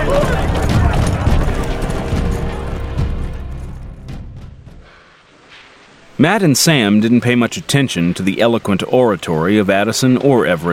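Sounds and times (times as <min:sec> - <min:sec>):
voices shouting: 0:00.0 - 0:02.8
galloping hoofbeats: 0:00.0 - 0:04.9
speech: 0:06.2 - 0:10.7.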